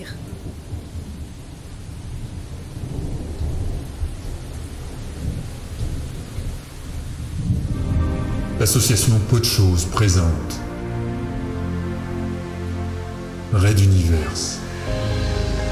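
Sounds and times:
steady rain pouring onto a windshield: 0:00.0 - 0:07.6
deep thunder rumbling and rolling: 0:00.0 - 0:12.3
speech: 0:08.6 - 0:10.7, 0:13.5 - 0:15.0.

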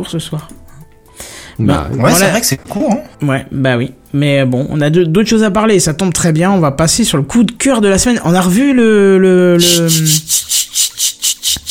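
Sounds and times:
speech: 0:00.0 - 0:00.6, 0:01.6 - 0:11.2
person imitating cicada chirping: 0:09.6 - 0:11.7.

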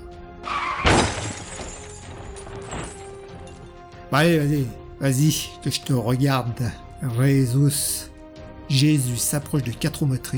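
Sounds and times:
car crashing after missing a bend: 0:00.4 - 0:03.8
second smaller impact of a crashing car: 0:00.5 - 0:03.9
scattered debris clatter from a car crash: 0:00.5 - 0:04.1
speech: 0:04.1 - 0:08.1, 0:08.7 - 0:10.3.

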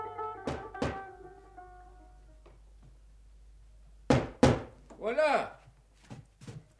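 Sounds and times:
sharp knocks on a door: 0:00.5 - 0:01.1, 0:04.1 - 0:04.8
person speaking: 0:04.9 - 0:05.7.

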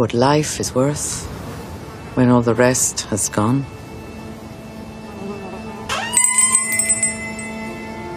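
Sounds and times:
speech: 0:00.0 - 0:01.4, 0:02.2 - 0:03.8
shop door bell jingling in a bric-a-brac shop: 0:05.9 - 0:08.0.

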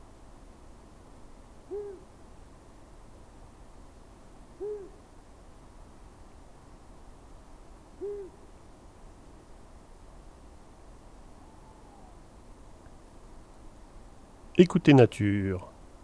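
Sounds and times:
steady background hiss and rumble: 0:00.0 - 0:16.0
male Long-eared Owl hooting at edge of Scots pine wood in Drôme: 0:01.7 - 0:02.0, 0:04.6 - 0:05.0, 0:08.0 - 0:08.4, 0:11.4 - 0:12.2
speech: 0:14.6 - 0:15.7.

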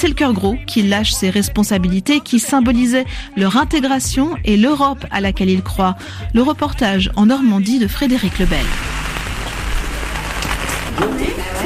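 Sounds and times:
speech: 0:00.0 - 0:09.0, 0:11.0 - 0:11.6
heavy rain pattering on hard surfaces: 0:08.1 - 0:11.0.

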